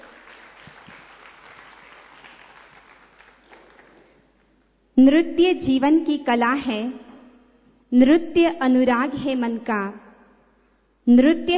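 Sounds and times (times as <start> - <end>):
audience applauding: 0.0 - 4.3
speech: 5.0 - 7.0, 7.9 - 10.0, 11.1 - 11.5.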